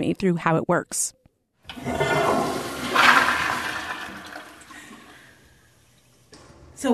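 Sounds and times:
speech: 0:00.0 - 0:02.2, 0:06.8 - 0:06.9
toilet flushing with recycled water: 0:01.7 - 0:05.9.

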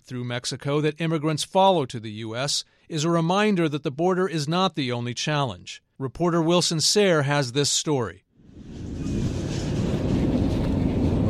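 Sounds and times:
speech: 0:00.1 - 0:08.8
freight train in Mexico rolling on tracks: 0:08.6 - 0:11.2.

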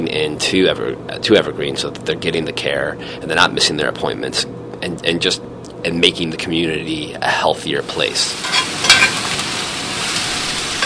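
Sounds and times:
speech: 0:00.2 - 0:08.8
red onions frying in a restaurant kitchen: 0:07.8 - 0:10.8
stirring clatters: 0:08.4 - 0:09.4.

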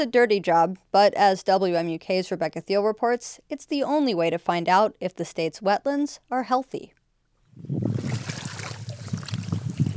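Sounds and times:
speech: 0:00.0 - 0:07.0, 0:07.6 - 0:08.3
people wading through wetland water: 0:07.9 - 0:09.9.

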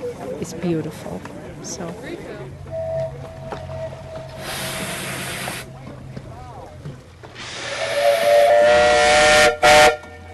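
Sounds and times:
speech: 0:00.4 - 0:02.7
whistle-like tonal blast: 0:02.7 - 0:05.7, 0:07.5 - 0:10.1
steam engine on a boat hissing: 0:04.0 - 0:06.0, 0:07.2 - 0:09.9.

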